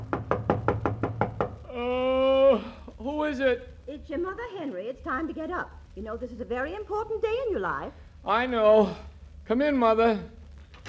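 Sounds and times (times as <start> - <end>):
knocking on a bedroom door: 0.0 - 1.7
speech: 1.8 - 10.8.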